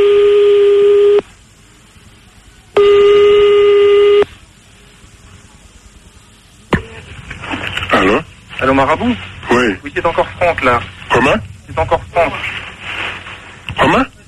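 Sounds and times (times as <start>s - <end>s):
telephone line tones while redialing a number: 0.0s - 1.2s, 2.8s - 4.3s
speech: 8.8s - 12.4s.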